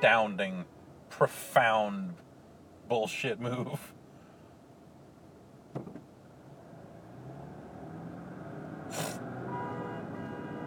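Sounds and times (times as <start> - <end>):
speech: 0.0 - 2.2, 2.9 - 4.0
rumbling road traffic: 0.0 - 2.9, 3.9 - 10.6
sharp thump: 5.7 - 6.1
brief hiss: 8.9 - 9.2
long steady truck horn blaring at a car: 9.4 - 10.6.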